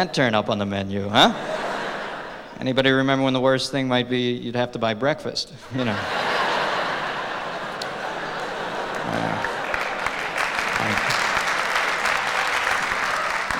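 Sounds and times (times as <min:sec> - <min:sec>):
speech: 0:00.0 - 0:01.5, 0:02.6 - 0:06.2
audience clapping: 0:06.4 - 0:13.5
audience chuckles and murmurs: 0:07.0 - 0:11.2.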